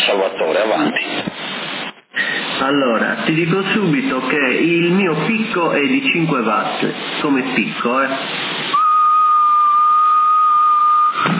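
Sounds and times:
band-limited radio hiss: 0.0 - 10.0, 10.9 - 11.3
speech: 2.7 - 8.4
whistled tone into a CB radio microphone during a transmitter power check: 8.7 - 11.3.

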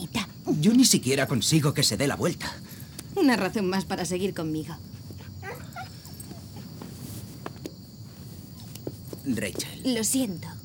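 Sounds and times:
hiss: 0.0 - 10.6
speech: 0.6 - 4.9, 9.3 - 10.6
shuffling: 0.7 - 10.6
small female dog whimpering and yipping: 5.0 - 6.9
light footstep-like ticks: 5.0 - 9.7.

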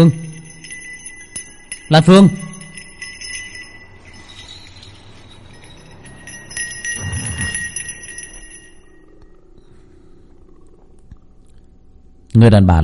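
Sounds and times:
speech: 0.0 - 0.2, 1.9 - 2.5, 12.4 - 12.8
bell ringing: 0.0 - 9.4.

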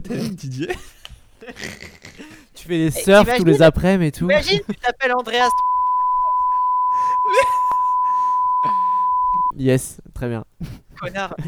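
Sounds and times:
speech: 0.1 - 5.7, 9.6 - 11.4
long steady censor bleep tone: 5.5 - 9.5
laughter: 6.6 - 8.0.

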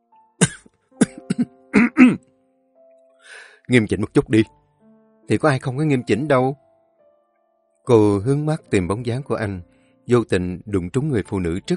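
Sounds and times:
man clearing his throat: 0.4 - 2.2
man coughing: 0.4 - 2.2
speech: 3.7 - 4.6, 5.3 - 6.6, 7.9 - 11.7.

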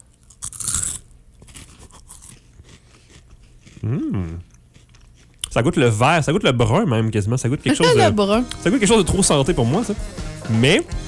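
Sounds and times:
crisp bite into a food sample: 0.2 - 5.5
person murmuring: 3.8 - 4.4, 7.7 - 8.3
speech: 3.8 - 4.5, 5.6 - 11.0.

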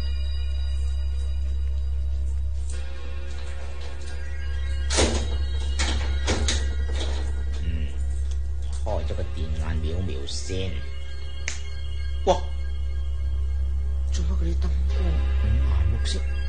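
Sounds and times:
steady low hum: 0.0 - 16.4
storeroom door being opened: 4.8 - 7.7
keys unlocking a storeroom door: 4.9 - 7.5
speech: 10.3 - 10.9, 12.2 - 12.5, 14.4 - 16.4.

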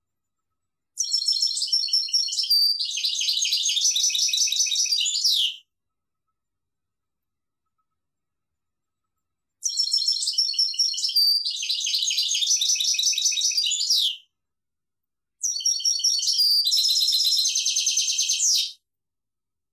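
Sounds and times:
European goldfinch song with liquid twittering and buzzy trills: 1.0 - 5.6, 9.6 - 14.3, 15.4 - 18.8.

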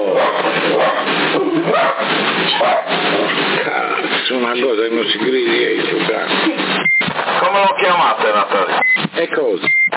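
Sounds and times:
CB radio hiss and noise: 0.0 - 9.9
agitated little dog barking over a CB radio transmission: 1.7 - 3.0.

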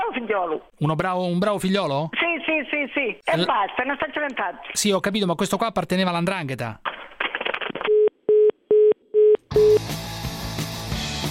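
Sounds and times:
speech: 0.2 - 7.1
telephone busy tone beeps after a call is hung up: 7.9 - 9.8
music: 9.5 - 11.2.

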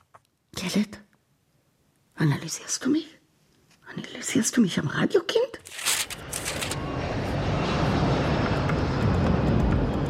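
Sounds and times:
speech: 0.6 - 1.0, 2.2 - 3.2, 3.9 - 5.8
airplane in flight engine roar: 5.6 - 10.0.

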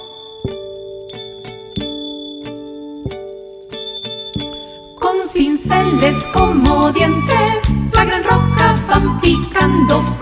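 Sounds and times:
small bells ringing: 0.0 - 5.3
speech: 5.9 - 10.2.

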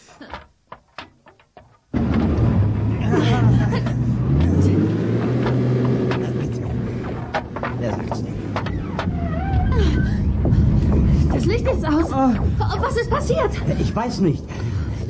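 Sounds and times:
boat engine revving at full power to free propellers stuck in sand: 1.9 - 15.0
laughter: 2.9 - 4.9, 11.9 - 14.5
speech: 13.4 - 14.6.

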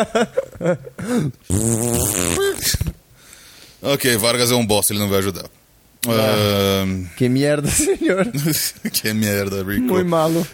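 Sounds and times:
speech: 0.0 - 3.0, 3.8 - 10.5
mouth-made fart imitation blown as a raspberry during a telephone call: 1.4 - 3.0.

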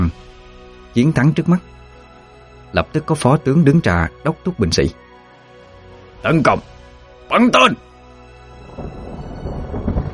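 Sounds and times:
speech: 1.0 - 1.7, 2.7 - 5.0, 6.2 - 7.9
thunder sound effect in a rumbling storm with crackling bursts: 8.5 - 10.1.

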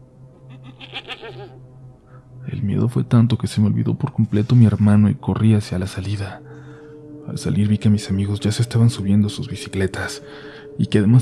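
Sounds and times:
goat bleating: 0.6 - 1.6
speech: 1.0 - 1.7, 2.4 - 6.7, 7.3 - 11.2.

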